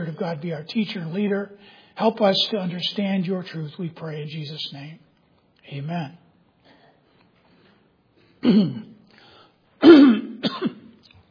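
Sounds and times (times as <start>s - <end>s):
speech: 0.0s - 5.0s, 5.7s - 6.2s, 8.4s - 8.9s, 9.8s - 10.8s
throat clearing: 8.4s - 9.1s, 9.8s - 11.0s.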